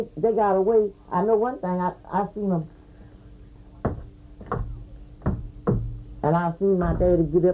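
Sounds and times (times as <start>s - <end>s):
speech: 0.0s - 2.8s, 6.2s - 7.5s
low hum: 0.0s - 7.5s
knocking on wooden door as a secret signal: 3.8s - 7.5s.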